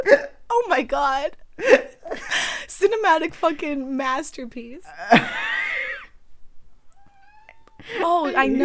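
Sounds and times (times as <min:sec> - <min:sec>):
speech: 0:00.0 - 0:05.5, 0:07.8 - 0:08.6
cat meowing: 0:06.9 - 0:08.0.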